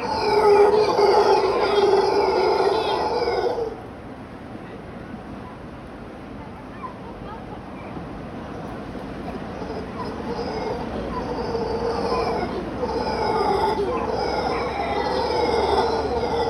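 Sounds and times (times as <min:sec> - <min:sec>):
mantled howler monkeys roaring: 0:00.0 - 0:03.9, 0:08.4 - 0:16.4.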